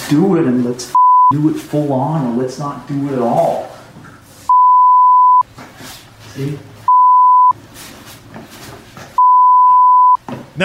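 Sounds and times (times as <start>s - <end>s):
speech: 0.1s - 3.7s, 6.4s - 6.7s
censor bleeps over swear words: 1.0s - 1.4s, 4.5s - 5.4s, 6.9s - 7.6s, 9.2s - 10.6s.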